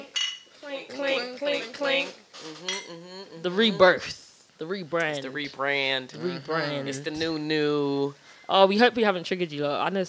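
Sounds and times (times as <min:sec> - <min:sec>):
glasses clinking in a toast: 0:00.1 - 0:00.5, 0:02.6 - 0:02.9
speech: 0:03.4 - 0:10.0.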